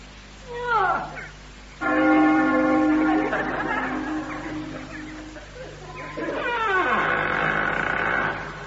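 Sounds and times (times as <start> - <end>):
sliding crowing-like calls: 1.1 - 8.6
large bell clanging with a rusty iron ring: 1.8 - 5.6
laughter: 2.3 - 6.6.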